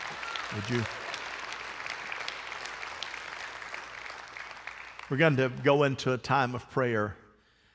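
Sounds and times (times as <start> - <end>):
large crowd applauding: 0.0 - 5.9
speech: 0.5 - 1.0, 5.1 - 7.2.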